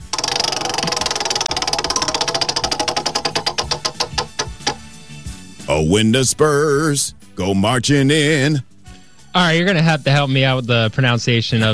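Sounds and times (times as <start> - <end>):
prize wheel spinning and ticking: 0.0 - 4.9
speech: 5.7 - 8.7, 9.3 - 11.7.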